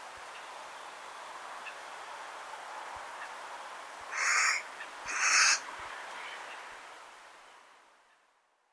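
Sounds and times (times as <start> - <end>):
faint background hiss: 0.0 - 8.7
Carrion crow Corvus corone giving harsh broad caws: 4.1 - 5.6.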